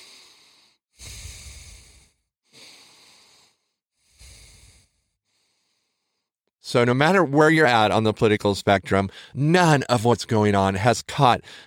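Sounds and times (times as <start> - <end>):
deep breathing: 0.0 - 6.4, 9.1 - 9.4, 11.4 - 11.6
speech: 6.7 - 11.6.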